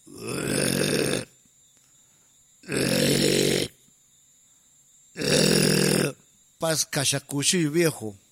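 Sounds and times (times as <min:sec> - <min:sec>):
person imitating loud rasping snoring with their voice: 0:00.1 - 0:01.3, 0:02.6 - 0:03.8, 0:05.2 - 0:06.2
speech: 0:06.6 - 0:08.2.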